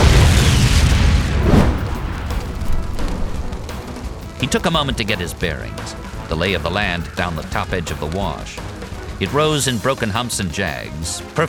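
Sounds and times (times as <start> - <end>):
loud explosion booming with deep rumble: 0.0 - 4.4
speech: 4.4 - 11.4.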